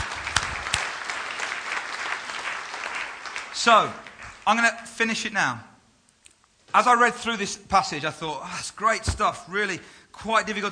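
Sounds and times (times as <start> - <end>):
audience applause in a reverberant room: 0.0 - 4.6
speech: 3.6 - 5.7, 6.7 - 10.7.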